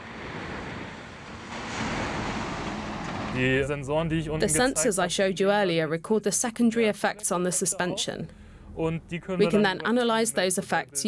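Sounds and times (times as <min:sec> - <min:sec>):
water jets spraying on a driving truck: 0:00.0 - 0:03.7
low rumble of a truck driving through water jets: 0:00.0 - 0:05.4, 0:08.3 - 0:09.4
speech: 0:03.4 - 0:11.0.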